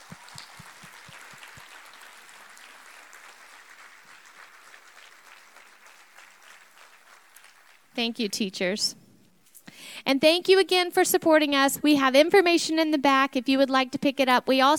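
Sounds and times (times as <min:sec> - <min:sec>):
audience applause for teachers: 0:00.0 - 0:07.9
speech: 0:08.0 - 0:09.0, 0:10.1 - 0:14.7.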